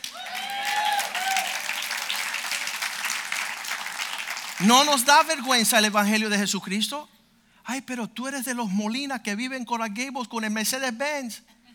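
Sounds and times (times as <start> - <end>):
cheers and whoops: 0.0 - 2.4
audience applauding: 0.0 - 5.4
speech: 4.6 - 11.6.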